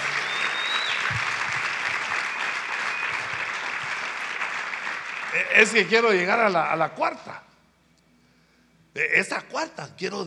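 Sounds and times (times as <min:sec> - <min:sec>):
large audience applauding: 0:00.0 - 0:06.4
speech: 0:05.4 - 0:07.5, 0:09.0 - 0:10.2.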